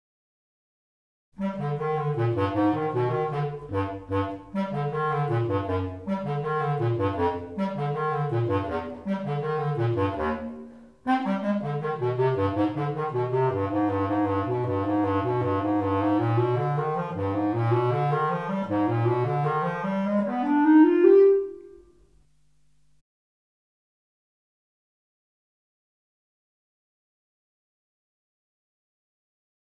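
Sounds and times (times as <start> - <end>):
bass clarinet: 1.4 - 22.2.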